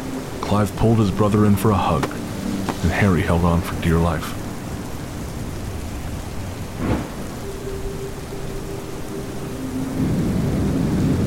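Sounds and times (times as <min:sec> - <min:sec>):
heavy rain hissing over the ocean: 0:00.0 - 0:11.2
speech: 0:00.5 - 0:02.2, 0:02.8 - 0:04.4
sharp thunderclap over the ocean: 0:06.7 - 0:07.3.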